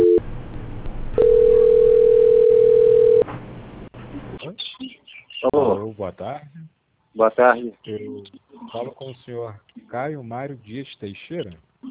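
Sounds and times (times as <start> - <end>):
steady single-pitch telephone tone during a call transfer: 0.0 - 0.2, 1.2 - 3.2
speech: 5.6 - 6.6, 7.2 - 11.7.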